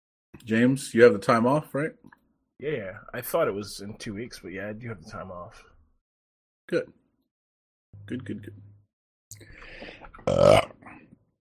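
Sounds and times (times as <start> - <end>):
speech: 0.5 - 5.7, 6.7 - 7.0, 7.9 - 8.7, 9.4 - 10.8
quiet throaty noises: 9.3 - 11.2
loud croaking burp: 10.2 - 10.9.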